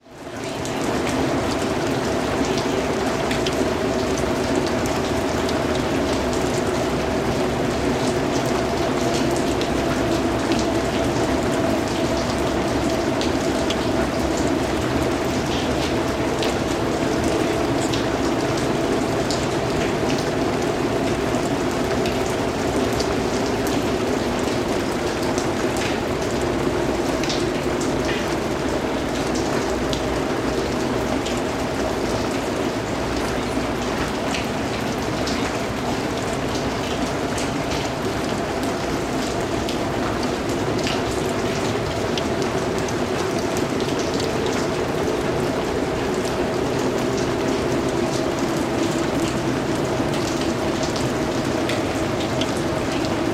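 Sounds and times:
rain in an alley: 0.0s - 53.3s.

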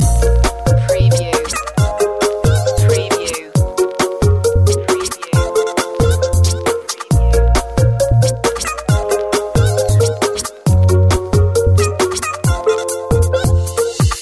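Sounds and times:
glitch pop loop: 0.0s - 14.2s.

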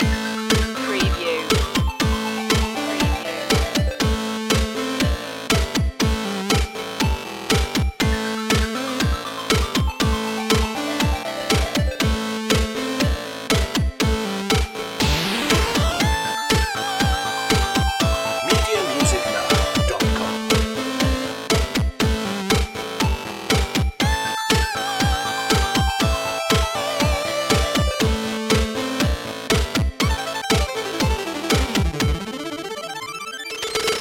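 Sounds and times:
retro video game music loop: 0.0s - 33.9s.

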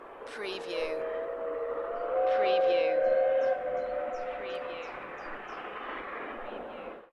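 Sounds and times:
distant steam railway whistle in Snowdonia: 0.0s - 5.4s.

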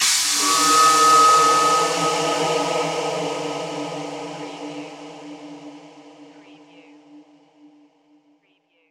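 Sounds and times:
production element cymbal hit: 0.0s - 6.3s.

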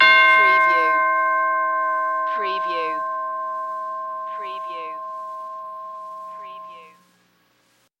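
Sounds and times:
single tubular bell: 0.0s - 7.1s.

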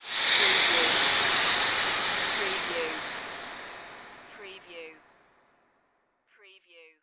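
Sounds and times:
airy swell: 0.0s - 4.9s.

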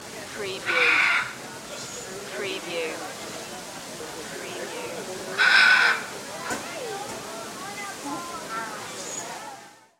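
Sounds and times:
parrots in a park: 0.6s - 2.0s, 5.4s - 6.0s.

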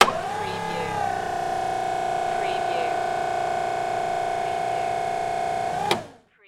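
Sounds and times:
hi lo motor operating: 0.0s - 6.2s.

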